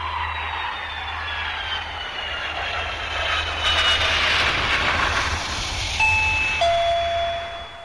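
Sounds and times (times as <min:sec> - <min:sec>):
rushing engine-like whoosh with gliding whine: 0:00.4 - 0:07.0
bright two-note doorbell chime: 0:06.0 - 0:07.8.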